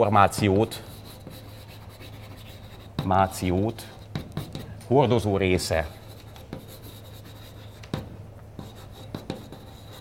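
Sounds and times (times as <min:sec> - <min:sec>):
speech: 0:00.0 - 0:00.9, 0:03.0 - 0:04.0, 0:04.9 - 0:06.0
writing something down: 0:00.7 - 0:04.6, 0:06.0 - 0:08.0, 0:08.6 - 0:10.0
writing tool tapping and knocking on the surface: 0:04.1 - 0:04.7, 0:06.3 - 0:06.8, 0:07.8 - 0:09.7.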